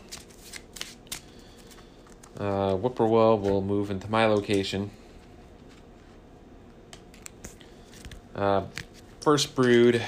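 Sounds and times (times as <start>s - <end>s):
deck of game cards being riffle shuffled during a board game: 0.0s - 4.8s, 6.9s - 9.8s
speech: 2.4s - 5.0s, 8.4s - 10.0s.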